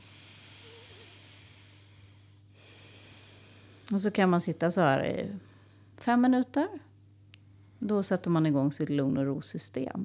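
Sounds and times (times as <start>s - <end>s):
slow breathing through the left nostril: 0.0s - 3.9s
low hum: 0.0s - 10.0s
speech: 3.9s - 6.9s, 7.8s - 10.0s.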